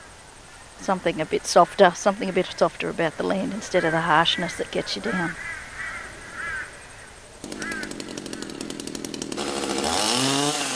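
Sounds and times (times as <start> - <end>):
speech: 0.8 - 5.5
crows cawing faintly: 2.2 - 8.7
chainsaw cutting wood for a sculpture: 7.4 - 10.7.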